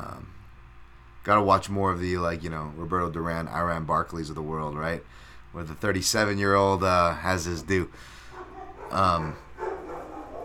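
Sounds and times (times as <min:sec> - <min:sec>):
speech: 0:01.2 - 0:08.2, 0:08.9 - 0:09.4
single sharp dog bark: 0:08.3 - 0:10.4.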